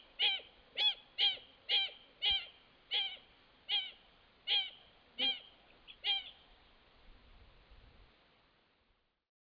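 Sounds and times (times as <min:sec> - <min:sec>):
Wattled jacana Jacana jacana jacana squawking calls: 0:00.0 - 0:06.5.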